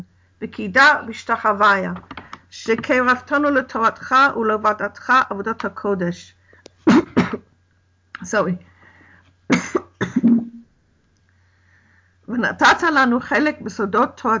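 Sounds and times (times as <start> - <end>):
speech: 0.0 - 7.4, 8.2 - 8.7, 12.3 - 14.3
harsh coughing: 6.8 - 7.5, 9.5 - 10.6
person clearing throat: 6.9 - 7.5, 9.5 - 10.6.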